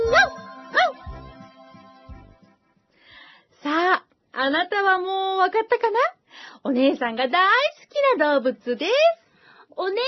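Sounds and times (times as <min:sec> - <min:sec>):
dog barking in sharp yaps: 0:00.1 - 0:01.0
speech: 0:04.9 - 0:09.2, 0:09.8 - 0:10.0.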